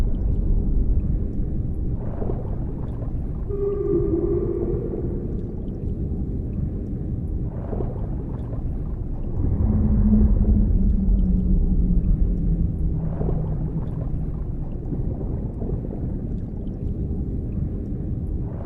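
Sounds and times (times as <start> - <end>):
deep underwater rumble: 0.0 - 18.6
whale moans and hums: 3.5 - 6.0, 9.4 - 13.6.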